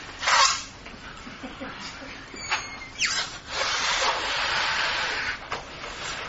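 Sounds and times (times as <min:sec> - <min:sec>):
volunteers blowing up balloons: 0:00.2 - 0:00.7, 0:02.4 - 0:06.2.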